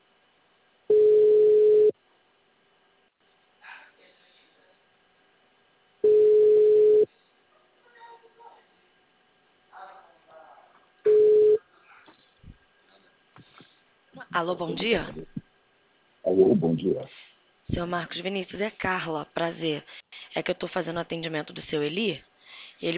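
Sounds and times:
telephone ringback tone while a call connects: 0.9 - 1.9, 6.0 - 7.1, 11.1 - 11.6
speech: 14.4 - 15.3, 16.4 - 22.9.

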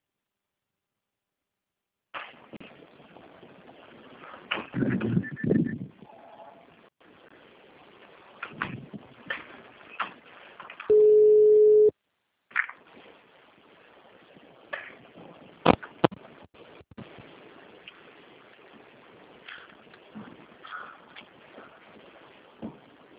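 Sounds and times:
low noise: 2.2 - 23.1
telephone call ringing tone: 10.9 - 11.9.

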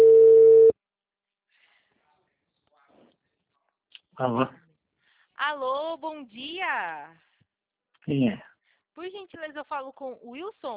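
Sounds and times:
telephone ringback tone as an outgoing call connects: 0.0 - 0.7
speech: 4.2 - 4.6, 5.5 - 7.3, 8.0 - 10.7.

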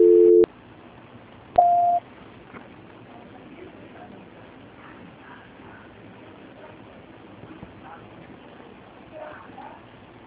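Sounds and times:
telephone line tones during a call transfer: 0.0 - 0.5, 1.6 - 2.0.

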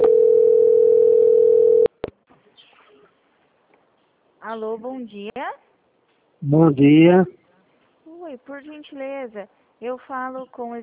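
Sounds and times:
telephone line tone during a call transfer: 0.0 - 1.9
speech: 4.5 - 5.7, 6.4 - 7.4, 8.3 - 10.8.

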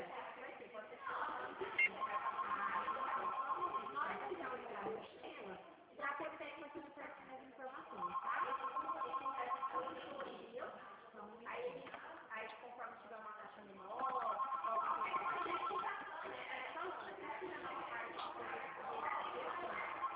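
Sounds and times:
people talking: 0.0 - 20.1
telephone ringing: 1.6 - 4.4, 7.9 - 10.2, 13.8 - 16.1, 19.2 - 20.1.

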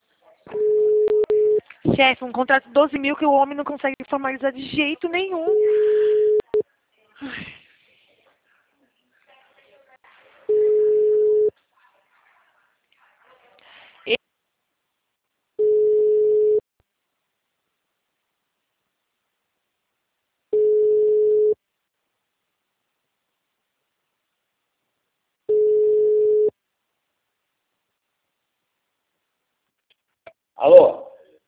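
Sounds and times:
telephone line tone after a dropped call: 0.6 - 1.6, 5.5 - 6.6, 10.5 - 11.5, 15.6 - 16.6, 20.6 - 21.6, 25.5 - 26.5
speech: 2.0 - 5.8, 7.2 - 7.6.

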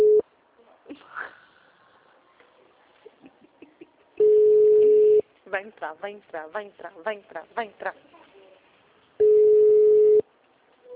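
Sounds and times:
ringing tone on a phone line while calling someone: 0.0 - 0.2, 4.2 - 5.2, 9.2 - 10.2
faint scattered noises: 0.0 - 10.9
speech: 5.6 - 8.1.

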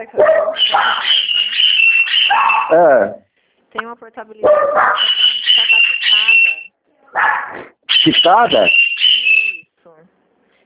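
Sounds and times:
speech: 0.0 - 1.1, 2.7 - 5.8, 7.1 - 8.8
dogs barking and yipping: 0.0 - 2.8, 4.4 - 9.6.

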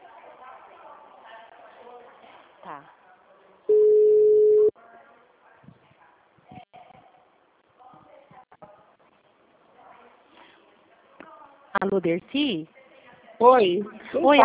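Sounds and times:
speech: 2.6 - 3.0, 11.9 - 12.8, 13.4 - 14.4
mid-pitched ringing tone on an outgoing telephone call: 3.7 - 4.7.

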